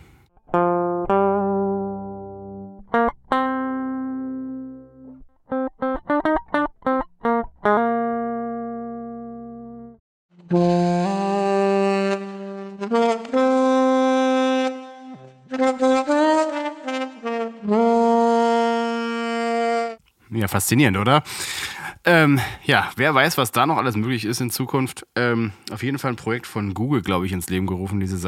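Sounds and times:
clean dry DI electric guitar playing: 0.4 - 20.0
synthesized saxophone-like tone transformed from guitar: 10.4 - 20.0
speech: 20.5 - 28.2.

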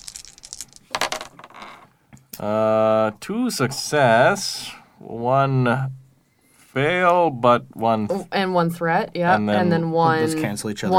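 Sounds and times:
dice passed over and rolled during a tabletop role-playing game: 0.0 - 1.8
speech: 2.4 - 6.0, 6.8 - 10.9.

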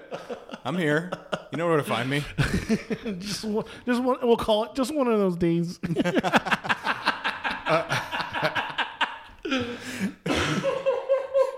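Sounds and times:
speech: 0.7 - 6.6
person laughing and coughing: 2.1 - 3.4, 7.5 - 11.5.

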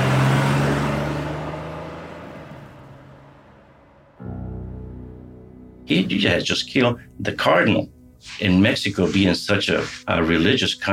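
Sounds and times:
car engine roaring as the car speeds away: 0.0 - 4.2
speech: 5.9 - 10.9.

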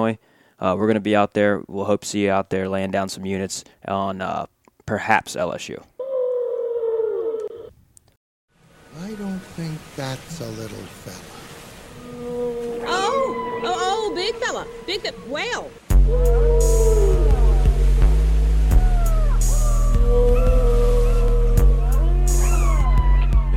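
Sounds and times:
speech: 0.0 - 5.9, 9.2 - 11.4, 13.6 - 16.7
whale calls: 6.0 - 7.7, 11.8 - 23.5
deep steady low drone: 15.9 - 23.5.

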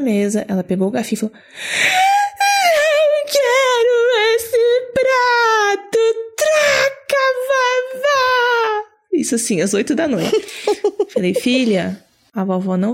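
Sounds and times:
speech: 0.0 - 2.1, 9.2 - 12.9
voice imitating a little girl crying and wailing: 2.0 - 9.0
laughter: 10.2 - 12.0.

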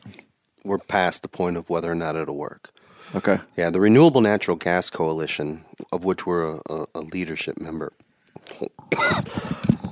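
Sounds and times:
speech: 0.7 - 9.2
person clearing throat: 8.9 - 9.4
person coughing: 8.9 - 9.7.

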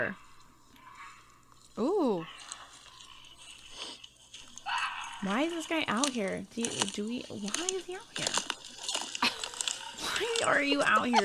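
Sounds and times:
speech: 0.0 - 0.3, 1.8 - 2.5, 5.2 - 8.5, 10.1 - 11.2
footsteps crunching dry leaves on a forest floor: 2.3 - 11.2.

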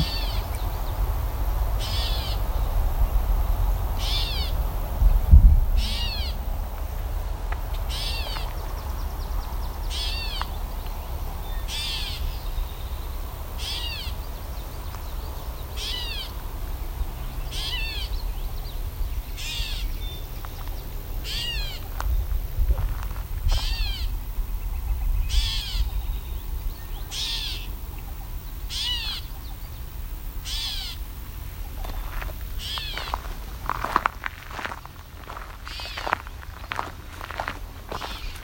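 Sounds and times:
gray catbird giving nasal cat-like mewing calls: 0.0 - 1.0, 1.8 - 2.6, 4.0 - 4.6, 5.7 - 6.5, 7.6 - 10.6, 17.4 - 18.3, 21.2 - 22.0, 23.4 - 24.2, 24.8 - 26.1, 26.9 - 29.6, 30.4 - 31.0, 31.7 - 38.4
low outdoor rumble: 0.0 - 38.4.

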